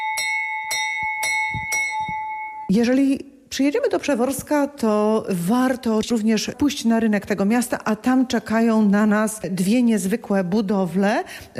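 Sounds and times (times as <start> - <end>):
fire brigade bell ringing at a firefighting museum: 0.0 - 2.7
speech: 2.7 - 11.5.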